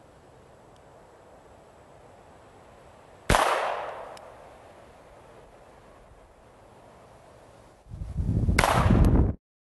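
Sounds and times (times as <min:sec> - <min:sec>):
gunshots from a magazine-loaded gun: 0:03.3 - 0:04.1, 0:08.6 - 0:09.0.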